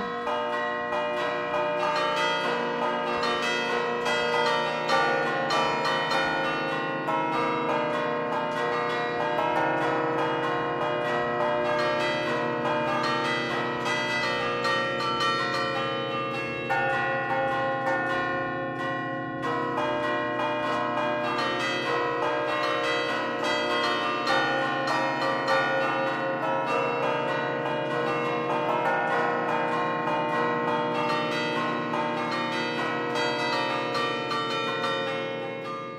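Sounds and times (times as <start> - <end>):
church bells ringing in a full peal: 0.0 - 35.9.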